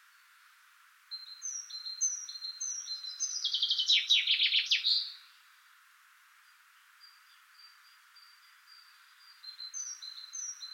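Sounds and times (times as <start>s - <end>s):
common chaffinch Fringilla coelebs song: 1.1s - 5.2s, 7.0s - 10.7s.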